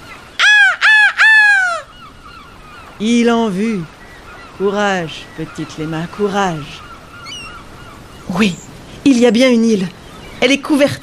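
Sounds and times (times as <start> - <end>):
seagull crying with harsh nasal calls: 0.0 - 8.7
speech: 3.0 - 4.0, 4.6 - 6.9, 8.3 - 11.0.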